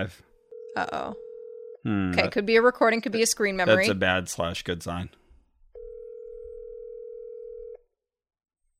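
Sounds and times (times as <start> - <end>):
speech: 0.0 - 1.2, 1.8 - 5.2
steady telephone tone of a phone calling out: 0.5 - 1.8, 5.8 - 7.8.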